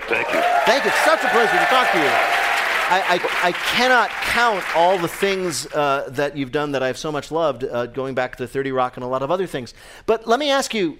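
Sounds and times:
studio audience applause: 0.0 - 5.7
speech: 0.7 - 10.9.

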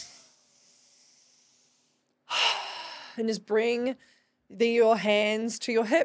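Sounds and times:
deep breath in: 0.0 - 3.2
speech: 3.2 - 6.0.

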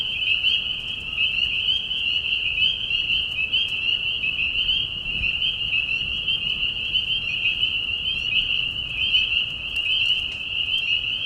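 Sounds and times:
spring peeper frogs calling from a marsh at night: 0.0 - 11.2.

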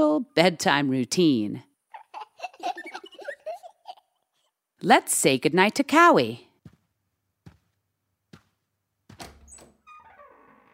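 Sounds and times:
speech: 0.2 - 1.7, 4.8 - 6.5
laughter: 2.0 - 4.2
bedroom door closing with wooden thuds: 9.1 - 10.7
bedroom door creaking squeal: 9.3 - 10.7.

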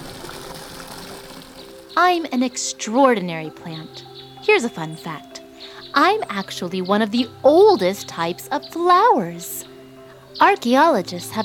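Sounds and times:
steady stream of water pouring or trickling: 0.0 - 1.9
speech: 2.0 - 5.3, 5.9 - 9.7, 10.4 - 11.4.

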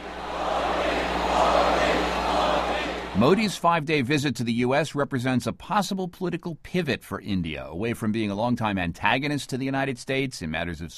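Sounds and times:
large indoor sold-out arena crowd cheering: 0.0 - 3.6
speech: 3.2 - 10.9.

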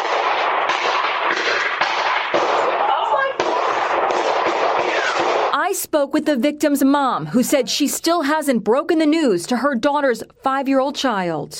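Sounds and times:
gunshots from a gun battle: 0.0 - 5.6
speech: 5.8 - 11.5.

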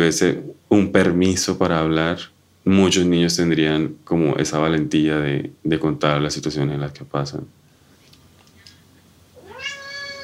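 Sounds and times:
speech: 0.0 - 7.6
cat meowing: 9.4 - 10.2.

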